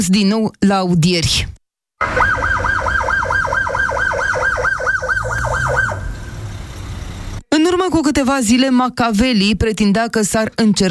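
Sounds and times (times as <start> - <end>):
speech: 0.0 - 2.8, 7.6 - 10.8
ambulance siren wailing: 2.0 - 7.4
low traffic rumble: 2.0 - 7.5.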